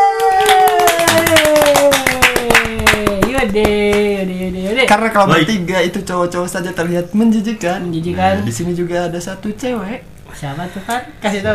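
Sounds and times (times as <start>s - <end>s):
several people clapping rapidly: 0.0s - 4.6s
speech: 3.4s - 11.5s.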